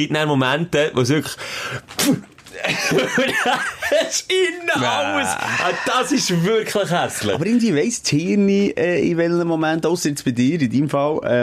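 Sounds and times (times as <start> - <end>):
speech: 0.0 - 11.4
person faking a sneeze with a sharp breathy burst: 1.9 - 2.6
laughter: 2.6 - 7.6.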